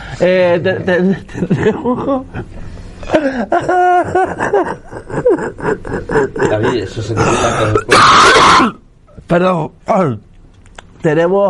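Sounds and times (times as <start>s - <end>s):
speech: 0.2s - 10.3s, 11.0s - 11.4s
laughter: 0.9s - 7.6s
harsh raspy cough: 3.0s - 8.8s
short voiced grunting sounds: 4.4s - 8.8s.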